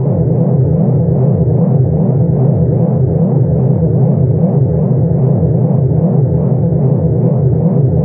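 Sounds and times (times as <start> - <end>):
sci-fi forcefield hum: 0.0 - 8.0.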